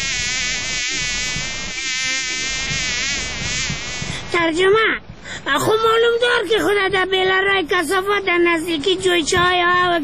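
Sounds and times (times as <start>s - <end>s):
fly buzzing: 0.0s - 4.3s
speech: 4.5s - 10.0s.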